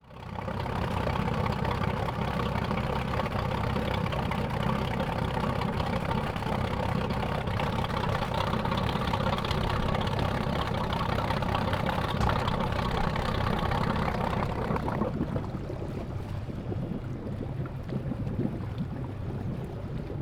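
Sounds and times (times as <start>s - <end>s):
boat engine idling: 0.0s - 20.1s.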